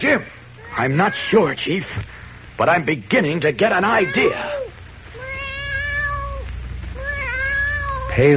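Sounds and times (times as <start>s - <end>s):
speech: 0.0s - 4.6s, 8.2s - 8.3s
low steady hum: 0.0s - 8.3s
black cat mewing plaintively on a bed: 0.6s - 1.6s, 3.9s - 8.3s.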